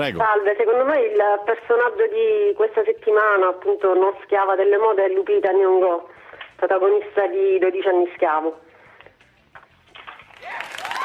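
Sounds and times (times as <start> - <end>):
speech: 0.0 - 8.6
applause sound effect for a winning quiz answer: 10.2 - 11.0.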